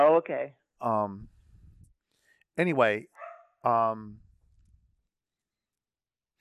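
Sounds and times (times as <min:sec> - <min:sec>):
speech: 0:00.0 - 0:01.4, 0:02.6 - 0:04.2
dogs barking: 0:03.2 - 0:03.5.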